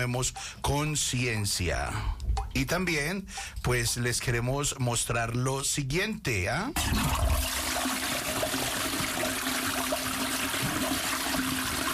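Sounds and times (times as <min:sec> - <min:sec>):
speech: 0:00.0 - 0:07.9
water running from a tap: 0:06.8 - 0:11.9.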